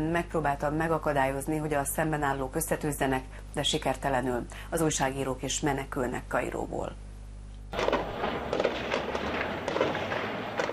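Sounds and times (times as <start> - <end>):
speech: 0.0 - 7.0, 7.7 - 8.0
constant dense roar of noise: 7.7 - 10.7
scattered gunshots across a city street: 7.7 - 10.7.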